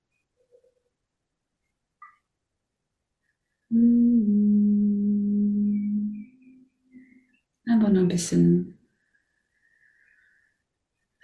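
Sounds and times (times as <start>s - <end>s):
single low hummed note: 3.7s - 6.4s
speech: 7.9s - 8.8s.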